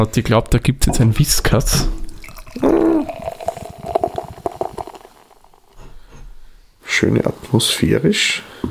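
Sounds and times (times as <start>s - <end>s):
speech: 0.0s - 2.0s, 2.6s - 2.8s, 7.0s - 8.7s
beer pouring into a glass: 1.8s - 5.8s.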